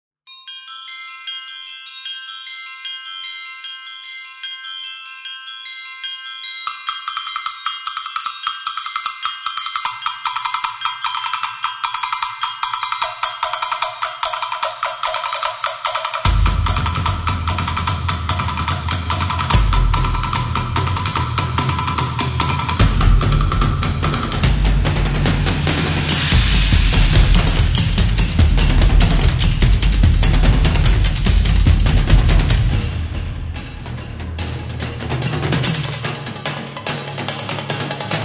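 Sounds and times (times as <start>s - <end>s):
bells: 0.3s - 38.2s
drums: 8.0s - 38.2s.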